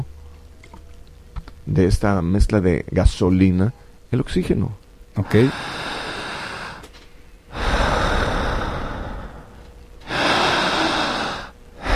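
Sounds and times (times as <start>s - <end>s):
speech: 1.7s - 5.8s
deep breathing in and out in a hypnosis breathing technique: 5.2s - 11.9s.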